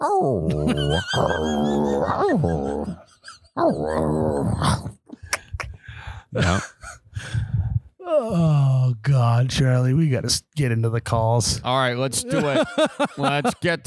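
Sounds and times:
speech: 0:00.0 - 0:04.9, 0:06.3 - 0:06.7, 0:09.2 - 0:13.8
person growling and snarling like a dog: 0:00.0 - 0:05.1, 0:06.3 - 0:07.5
laughter: 0:00.5 - 0:03.6, 0:12.2 - 0:13.8
person gasping and sputtering: 0:05.1 - 0:08.0.

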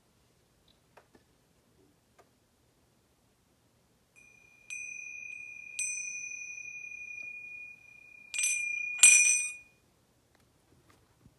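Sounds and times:
bell rung to end writing time: 0:04.2 - 0:09.8.

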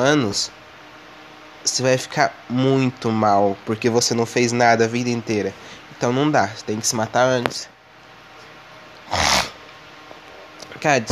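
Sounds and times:
speech: 0:00.0 - 0:00.6, 0:01.6 - 0:07.8, 0:10.8 - 0:11.0
sniff through a blocked nose in hot dry dusty weather: 0:09.1 - 0:09.6.

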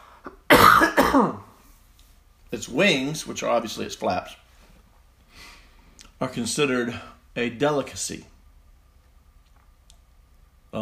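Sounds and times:
cough: 0:00.5 - 0:01.6
speech: 0:01.2 - 0:01.5, 0:02.5 - 0:04.4, 0:06.2 - 0:08.3
faint intake of breath: 0:04.5 - 0:06.0.

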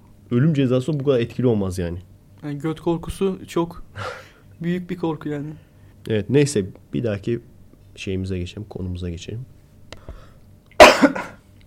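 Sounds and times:
speech: 0:00.3 - 0:09.6
person coughing: 0:10.8 - 0:11.5.

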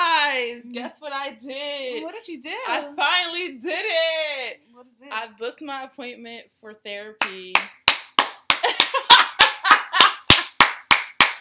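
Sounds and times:
speech: 0:00.8 - 0:07.8
sharp hand claps: 0:07.2 - 0:11.3.

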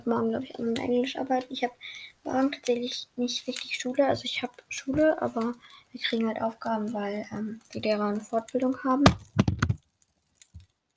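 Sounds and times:
speech: 0:00.0 - 0:09.4
bouncy ball clattering across a computer keyboard: 0:09.0 - 0:10.7.

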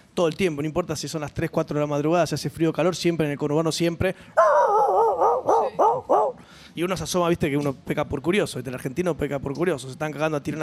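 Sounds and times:
speech: 0:00.2 - 0:04.7, 0:05.4 - 0:10.6
person imitating a dog barking with whiny barks and rising yelps: 0:04.4 - 0:06.4.

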